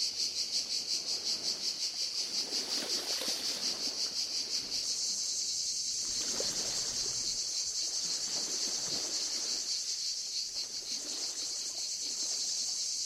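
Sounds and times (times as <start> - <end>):
Cicada orni cicadas stridulating at Le Lavandou: 0.0 - 13.0.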